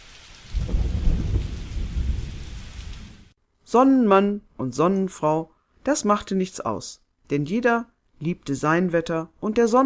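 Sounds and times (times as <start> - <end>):
heavy pouring rain with deep rumbling undertone: 0.0 - 3.4
speech: 3.7 - 9.8.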